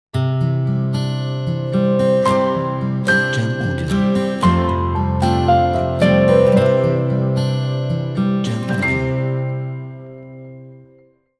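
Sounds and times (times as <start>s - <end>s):
inspiring guitar logo jingle: 0.2s - 11.1s.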